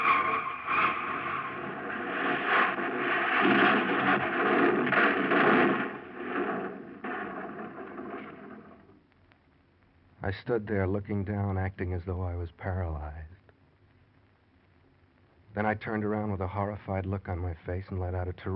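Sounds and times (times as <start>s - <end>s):
car going over a cliff edge and crashing to the bottom: 0.0s - 8.8s
scraping metal and crunching impacts of a car: 0.0s - 8.9s
speech: 10.3s - 13.3s, 15.6s - 18.5s.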